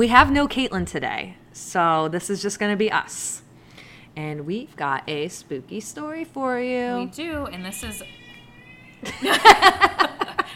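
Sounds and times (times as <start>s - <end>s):
speech: 0.0s - 3.4s, 4.2s - 8.2s, 9.0s - 10.1s
fat black male cat meowing insistently: 7.4s - 9.2s
laughter: 9.0s - 10.5s.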